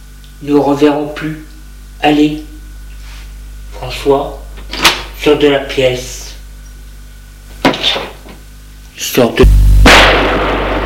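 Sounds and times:
speech: 0.4s - 2.5s, 3.8s - 4.4s, 5.2s - 6.3s, 9.0s - 10.4s
gunshot: 9.8s - 10.8s.

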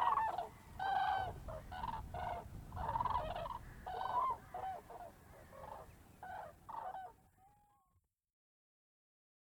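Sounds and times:
cranes in flight giving rolling trumpet-like calls in Polder Glies Bremerhaven Germany: 0.0s - 7.2s.

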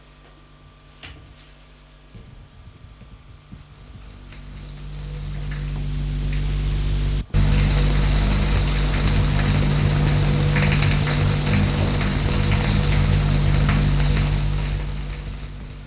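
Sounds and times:
shower running water: 3.6s - 15.8s.

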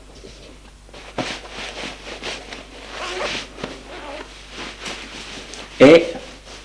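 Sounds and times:
fabric rustling: 1.0s - 6.6s
handling noises: 1.0s - 6.6s
clothing zipper pulled while undressing at home: 2.5s - 4.5s.

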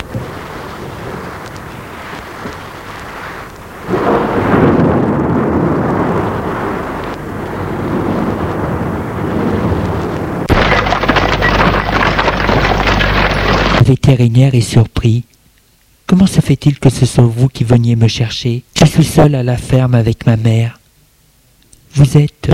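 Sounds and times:
deep rolling thunder: 0.0s - 13.8s
steady rain: 0.0s - 22.5s
wind: 0.0s - 22.5s
speech: 14.1s - 15.3s, 16.1s - 20.8s, 22.0s - 22.5s.

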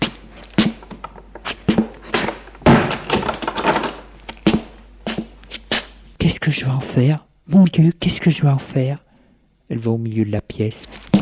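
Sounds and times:
sharp knocks and thuds: 0.0s - 5.3s
door being pushed shut: 2.2s - 4.1s
heavy bang: 2.6s - 3.5s
speech: 6.5s - 9.0s, 9.7s - 11.0s.

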